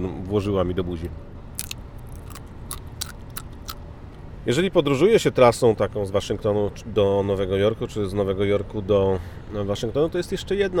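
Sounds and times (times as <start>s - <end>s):
speech: 0.0s - 1.4s, 4.4s - 10.7s
snack being bitten and chewed against the microphone: 1.6s - 3.8s.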